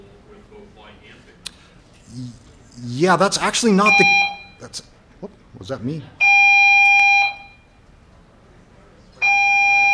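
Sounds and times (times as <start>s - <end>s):
speech: 2.1s - 6.2s
fire alarm blaring with steady electronic tone: 3.8s - 4.7s, 6.2s - 7.7s, 9.2s - 9.9s.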